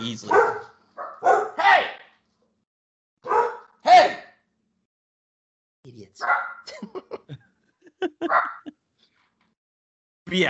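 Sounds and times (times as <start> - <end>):
speech: 0.0 - 0.4, 5.9 - 7.1
dog barking: 0.3 - 1.9, 3.2 - 4.2, 6.2 - 6.7, 8.2 - 8.7
laughter: 6.7 - 8.7.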